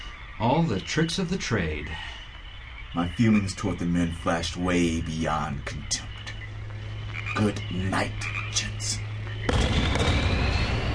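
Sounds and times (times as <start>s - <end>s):
speech: 0.4s - 2.2s, 2.9s - 6.2s, 7.4s - 9.7s
tranquilizer pistol shots in a forest: 9.5s - 10.9s.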